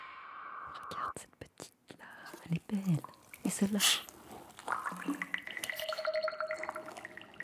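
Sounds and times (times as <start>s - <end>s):
speech: 0.7s - 4.1s
steady liquid trickle: 2.3s - 7.4s
water bubbling and gurgling: 2.9s - 7.4s.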